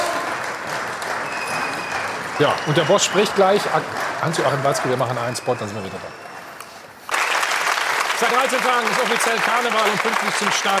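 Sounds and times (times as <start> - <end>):
crowd applause at a club members' meeting in Dortmund: 0.0 - 6.5, 7.1 - 10.7
thin whistles from the audience: 1.2 - 3.8, 4.5 - 6.6
speech: 2.4 - 6.2, 8.2 - 10.7.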